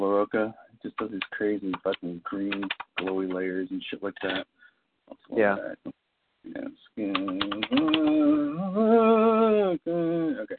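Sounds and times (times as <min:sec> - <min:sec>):
sustained tonal voice-like sound: 0:00.0 - 0:00.5, 0:05.2 - 0:05.9, 0:06.5 - 0:10.5
speech: 0:00.1 - 0:10.5
computer keyboard typing: 0:01.0 - 0:03.4, 0:04.1 - 0:04.4, 0:07.0 - 0:08.4.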